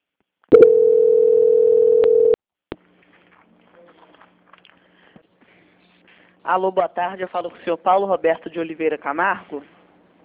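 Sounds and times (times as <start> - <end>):
telephone line tone during a call transfer: 0.5 - 2.4
speech: 6.5 - 9.8.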